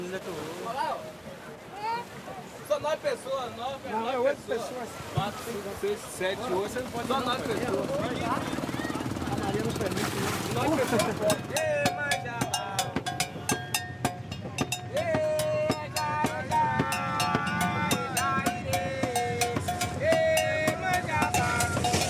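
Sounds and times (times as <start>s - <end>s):
rushing wash of a motorboat moving across water: 0.0s - 22.0s
voices chattering aboard a motorboat in Bahia: 0.0s - 22.0s
speech: 0.2s - 1.3s, 2.8s - 8.6s, 9.6s - 11.6s
motorboat engine drone on water in Bahia, Brazil: 5.7s - 22.0s
laughter: 10.5s - 11.8s.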